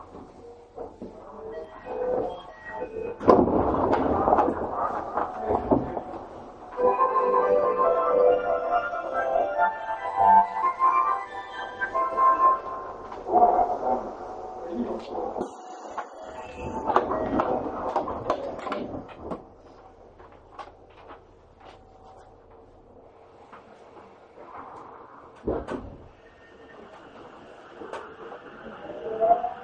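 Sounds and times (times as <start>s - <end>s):
subway train running, recorded from inside the car: 0.0s - 29.6s.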